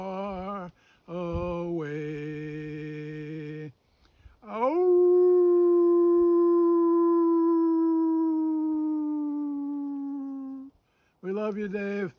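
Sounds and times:
lone wolf howling: 4.5 - 10.7
speech: 11.6 - 12.1.

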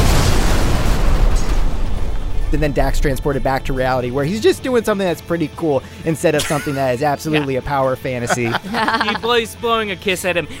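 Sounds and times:
truck explosion: 0.0 - 4.1
speech: 2.5 - 10.5
laughter: 6.2 - 9.6.

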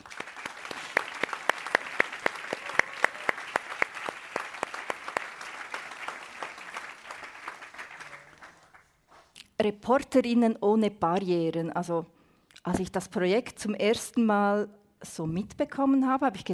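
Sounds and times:
audience applause: 0.0 - 8.8
speech: 9.6 - 16.5.

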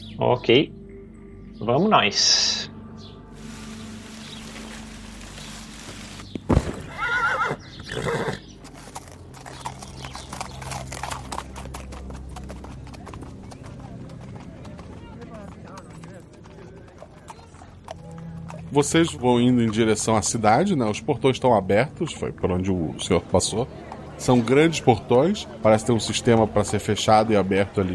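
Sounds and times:
speech: 0.2 - 0.8, 1.6 - 2.7, 18.8 - 27.9
horse hooves clip-clopping: 3.4 - 20.5, 23.7 - 27.9
horse neighing: 6.7 - 8.5.

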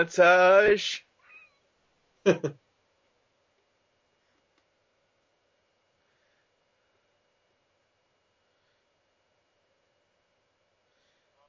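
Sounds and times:
speech: 0.0 - 1.1, 2.2 - 2.6
cat meowing: 1.2 - 1.6.

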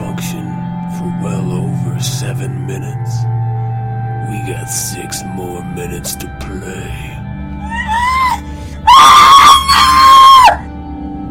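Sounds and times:
speech: 2.2 - 3.6, 4.3 - 7.2
person screaming: 7.6 - 10.6.

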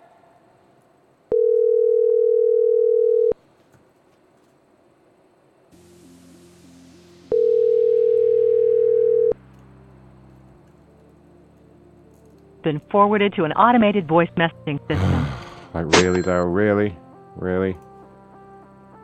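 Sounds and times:
telephone ringback tone of an unanswered call: 1.3 - 3.4, 7.3 - 9.4, 16.0 - 16.4
speech: 12.7 - 17.9.

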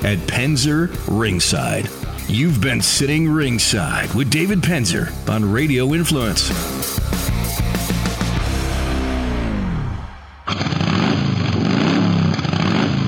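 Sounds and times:
speech: 0.0 - 7.0
motorcycle engine revving: 0.0 - 13.0.

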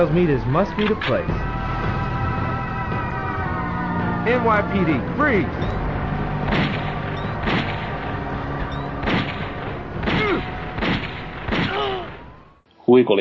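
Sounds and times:
speech: 0.0 - 1.6, 4.2 - 5.8, 13.0 - 13.1
steady din: 0.0 - 12.7
video game gunshots: 6.4 - 8.2, 8.9 - 12.4.

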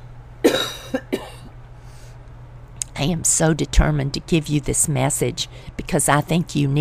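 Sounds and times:
person coughing: 0.4 - 1.5
speech: 3.0 - 6.7.

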